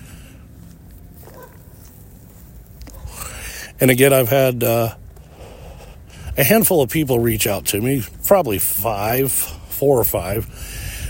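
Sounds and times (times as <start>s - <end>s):
footsteps on a street outdoors: 0.0s - 3.4s, 4.0s - 10.4s
steady low rumbling wind: 0.0s - 11.0s
handling noise: 0.6s - 3.2s
speech: 3.8s - 5.0s, 6.4s - 10.8s.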